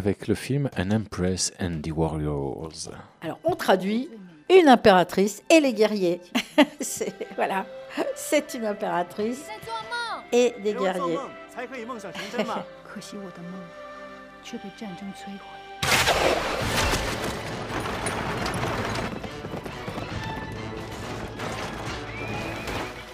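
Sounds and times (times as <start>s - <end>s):
speech: 0.0s - 13.8s, 14.4s - 16.8s
tense orchestral film music: 3.2s - 23.1s
laughter: 6.4s - 8.2s, 12.0s - 12.7s
horses galloping in a war film battle scene: 17.3s - 23.1s.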